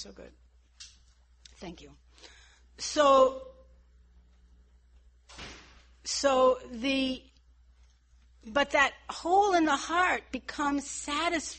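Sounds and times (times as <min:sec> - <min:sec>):
speech: 0:00.0 - 0:01.0, 0:01.6 - 0:03.6, 0:05.3 - 0:07.3, 0:08.4 - 0:11.5
door shutting with a rustling thud: 0:05.3 - 0:05.8.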